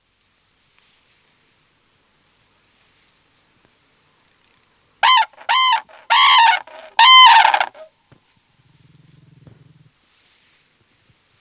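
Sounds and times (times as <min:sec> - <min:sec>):
red-crowned crane giving loud harmonic trumpeting calls: 0:05.0 - 0:07.9.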